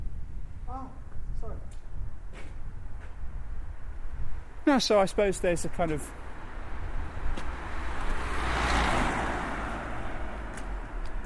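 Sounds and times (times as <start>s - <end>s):
low rumble of road noise outdoors: 0.0s - 11.2s
speech: 4.7s - 6.2s
car whooshing past: 6.2s - 11.2s.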